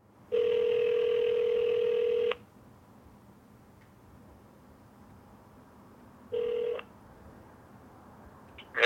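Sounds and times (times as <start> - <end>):
telephone ringback tone over the line: 0.3 - 2.4, 6.3 - 6.8.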